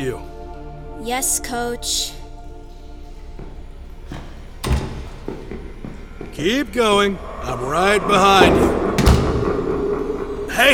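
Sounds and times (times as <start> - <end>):
speech: 0.1 - 0.3, 1.0 - 2.2, 6.4 - 8.8, 10.5 - 10.7
latch or lock clicks and knocks: 3.8 - 6.3, 8.0 - 10.4
door swinging shut with a heavy thud: 4.0 - 6.4, 7.2 - 10.7.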